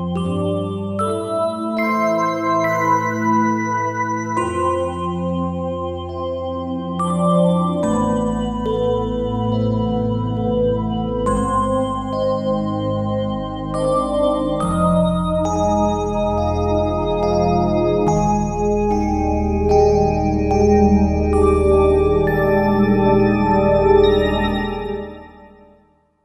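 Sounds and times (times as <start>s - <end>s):
bell pad on Roland JV-2080 synthesizer: 0.1s - 25.7s.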